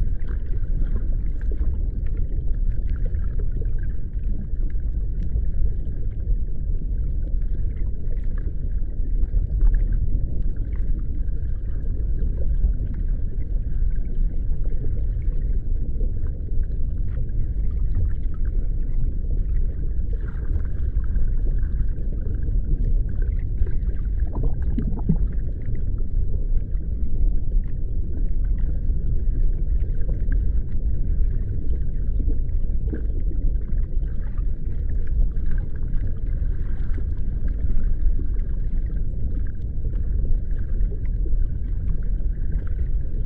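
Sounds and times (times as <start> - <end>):
faint crackling and ticking: 0.0 - 43.2
underwater low rumble: 0.0 - 43.2.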